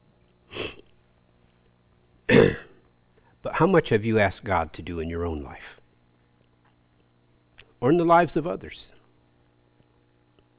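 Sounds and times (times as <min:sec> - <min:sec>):
dry coughs and throat clearing from dry tickle: 0:02.3 - 0:02.8
speech: 0:03.6 - 0:05.8, 0:07.8 - 0:08.9.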